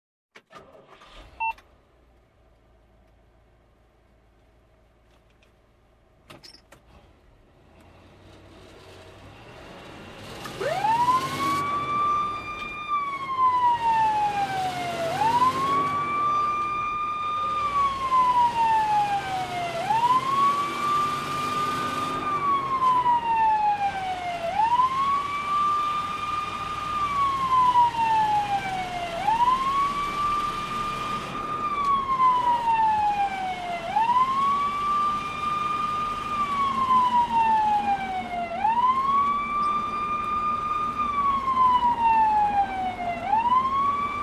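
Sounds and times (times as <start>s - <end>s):
fire truck cockpit startup: 0.4s - 1.6s, 10.2s - 44.2s.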